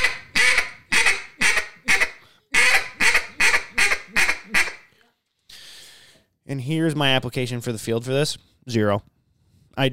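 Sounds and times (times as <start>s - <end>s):
duck call sounding a bouncing hen sequence of raspy quacks: 0.0s - 4.9s
speech: 6.5s - 9.1s.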